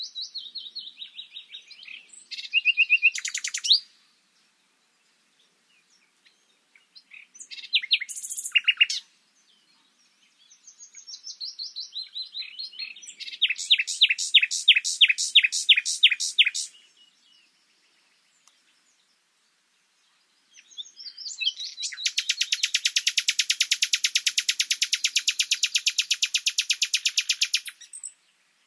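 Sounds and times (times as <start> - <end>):
Common nightingale song Luscinia megarhynchos: 0.0 - 4.0, 7.1 - 9.1, 10.4 - 17.5, 20.5 - 28.6.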